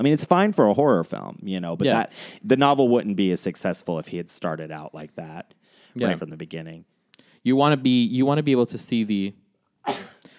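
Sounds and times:
speech: 0:00.0 - 0:10.1
person sneezing: 0:09.8 - 0:10.3.

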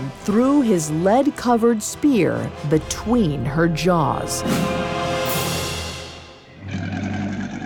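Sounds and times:
speech: 0:00.2 - 0:04.9
lion roaring, harsh and rumbling: 0:06.6 - 0:07.6.

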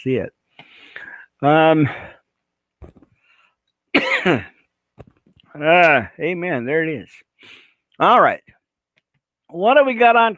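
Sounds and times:
speech: 0:00.0 - 0:00.4, 0:01.0 - 0:02.2, 0:04.2 - 0:04.5, 0:05.6 - 0:08.6, 0:09.5 - 0:10.3
raspy coughing and throat clearing: 0:03.9 - 0:04.6.

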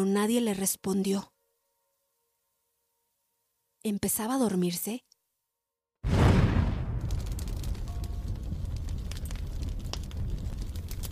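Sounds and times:
speech: 0:00.0 - 0:01.3, 0:03.8 - 0:05.1
crackling and scattered debris: 0:06.0 - 0:11.0
loud explosion shaking a house: 0:06.0 - 0:11.0
long heavy rumble after explosion: 0:06.1 - 0:11.0.

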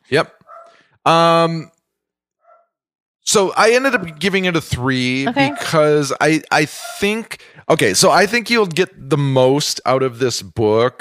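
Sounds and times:
speech: 0:00.1 - 0:00.4, 0:01.0 - 0:01.7, 0:03.2 - 0:10.9
terrier barking out the front window: 0:00.4 - 0:00.8, 0:03.8 - 0:04.2, 0:05.4 - 0:05.8, 0:06.8 - 0:07.1.

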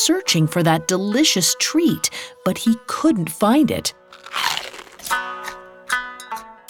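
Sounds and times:
speech: 0:00.0 - 0:04.5
crisp crunchy bites into food: 0:04.0 - 0:05.3.

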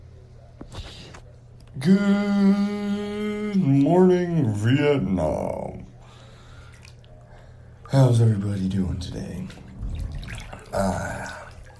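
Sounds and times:
speech: 0:01.8 - 0:02.8, 0:03.6 - 0:05.6, 0:07.9 - 0:09.7, 0:10.7 - 0:11.4
water sloshing and gurgling in a bathtub: 0:06.1 - 0:11.7.

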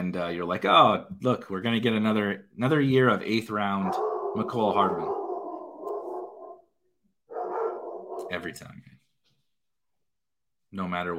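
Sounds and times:
speech: 0:00.1 - 0:05.2, 0:08.3 - 0:09.0, 0:10.7 - 0:11.1
dogs barking: 0:03.7 - 0:08.5.

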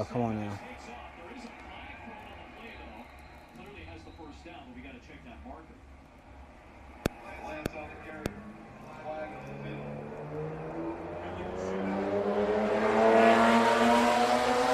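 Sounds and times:
speech: 0:00.1 - 0:00.7
cars driven fast and recklessly, engines revving: 0:08.1 - 0:14.7.

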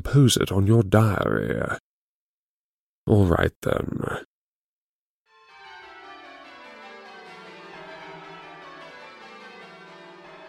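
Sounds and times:
speech: 0:00.0 - 0:01.9, 0:03.1 - 0:04.3
many bell tower bells ringing, rung by a 13-armed robot: 0:05.3 - 0:10.4.

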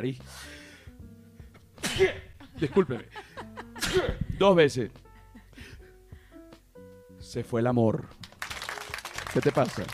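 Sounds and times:
speech: 0:00.0 - 0:00.6, 0:02.0 - 0:03.2, 0:03.9 - 0:05.0, 0:07.2 - 0:08.2, 0:09.3 - 0:09.9
single sharp loud sneeze: 0:01.8 - 0:02.3
laughter: 0:02.4 - 0:04.1.

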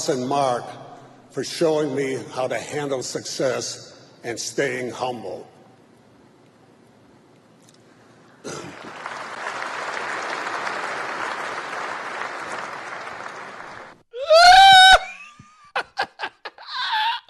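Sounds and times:
speech: 0:00.0 - 0:05.5
crowd applauding: 0:08.4 - 0:14.0
sharp claps: 0:08.6 - 0:14.0
crowd cheering: 0:08.7 - 0:15.1
loud whoop: 0:14.2 - 0:15.4.

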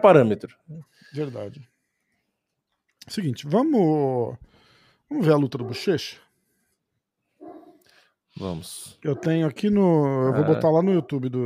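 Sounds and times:
speech: 0:00.0 - 0:01.7, 0:03.1 - 0:04.5, 0:05.1 - 0:06.2, 0:08.4 - 0:11.4
dog barking: 0:05.5 - 0:06.1, 0:07.4 - 0:07.8, 0:09.1 - 0:09.4.

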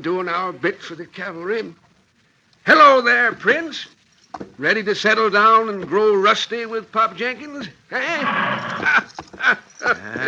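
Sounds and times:
speech: 0:00.0 - 0:01.8, 0:02.6 - 0:10.2
retired cavalry horse whinnying: 0:08.0 - 0:10.2
retired cavalry horse snorting: 0:08.2 - 0:09.0, 0:09.8 - 0:10.2.

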